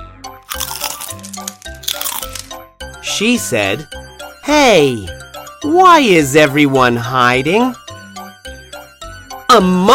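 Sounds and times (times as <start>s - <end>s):
bug chewing a leaf: 0.5s - 2.5s
speech: 3.1s - 7.8s, 9.6s - 9.9s.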